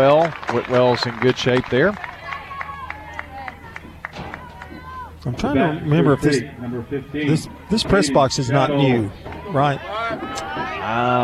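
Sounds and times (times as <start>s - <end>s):
speech: 0.0s - 2.1s, 5.2s - 10.2s, 10.9s - 11.2s
crowd clapping in rhythm at a ball game: 0.0s - 4.7s
crowd murmuring at a ball game: 0.0s - 11.2s.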